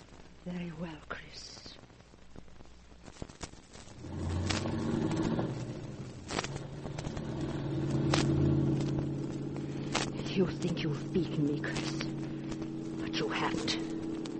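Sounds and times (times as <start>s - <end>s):
speech: 0.4s - 1.5s, 10.4s - 12.1s, 13.4s - 13.9s
car driving rumble: 4.0s - 14.3s.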